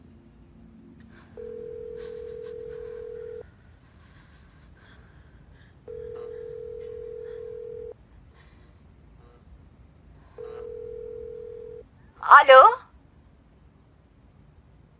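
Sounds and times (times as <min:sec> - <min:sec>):
telephone ring tone before a call is answered: 0:01.1 - 0:03.5, 0:05.9 - 0:07.9, 0:10.4 - 0:11.8
speech: 0:12.4 - 0:12.8.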